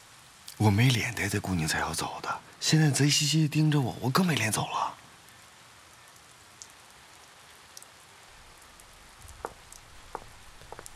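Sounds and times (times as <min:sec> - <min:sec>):
steady rain falling outdoors: 0:00.0 - 0:10.9
speech: 0:00.6 - 0:05.0
drips and taps landing on a surface: 0:09.3 - 0:10.9.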